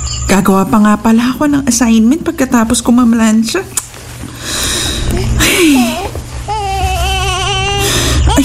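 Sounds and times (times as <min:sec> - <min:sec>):
steady low hum: 0:00.0 - 0:08.4
speech: 0:00.3 - 0:03.8
baby crying in short wavering wails: 0:05.1 - 0:08.4.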